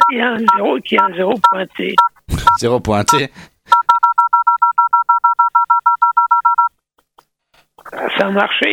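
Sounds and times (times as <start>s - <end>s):
touch-tone keypad dialing a phone number: 0.0s - 6.7s
speech: 0.1s - 3.5s, 8.2s - 8.7s.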